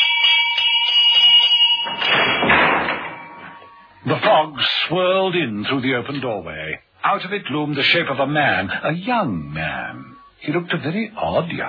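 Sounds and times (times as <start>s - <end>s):
front doorbell ringing with a rattling burst: 0.0s - 4.2s
speech: 4.0s - 11.6s.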